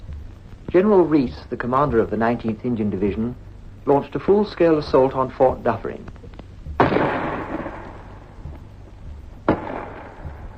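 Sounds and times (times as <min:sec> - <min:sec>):
low battlefield rumble: 0:00.0 - 0:10.5
speech: 0:00.7 - 0:06.2
artillery shell bursting: 0:06.7 - 0:10.5
5.5-inch artillery gun firing: 0:06.8 - 0:08.0, 0:09.5 - 0:10.4.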